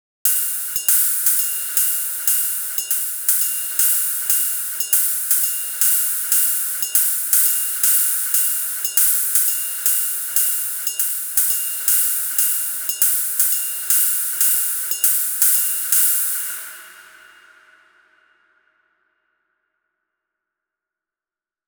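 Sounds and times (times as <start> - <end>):
hi-hats: 0.3 - 17.3.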